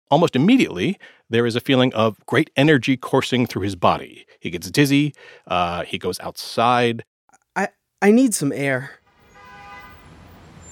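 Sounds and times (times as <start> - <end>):
speech: 0.1 - 9.0
traffic rumble: 9.0 - 10.6
car horn honking: 9.1 - 10.6.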